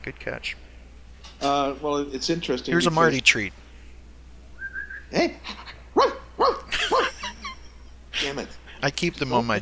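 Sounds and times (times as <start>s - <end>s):
speech: 0.0s - 0.7s, 1.4s - 3.6s, 5.1s - 6.2s, 8.2s - 9.6s
person barking like a dog: 6.0s - 7.2s
laughter: 6.6s - 8.8s.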